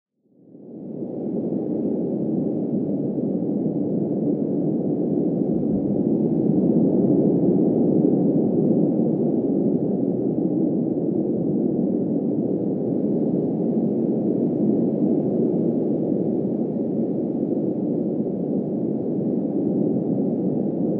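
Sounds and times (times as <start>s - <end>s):
strong wind outside a cave muffled: 0.3s - 20.9s.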